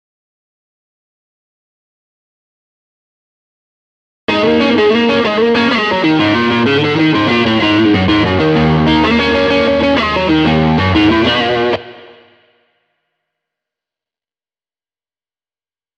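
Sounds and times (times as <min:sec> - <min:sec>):
rhythm guitar playing: 0:04.3 - 0:12.3.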